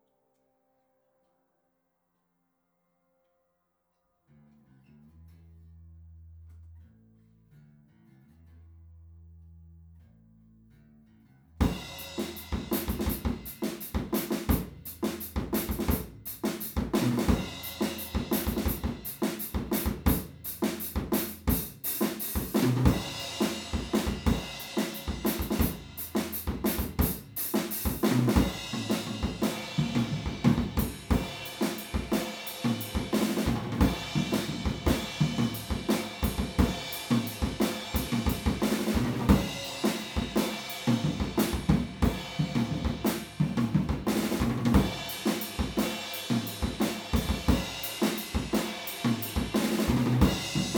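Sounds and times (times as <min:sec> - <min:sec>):
drums recorded with PZM omni microphone: 0:11.6 - 0:50.7.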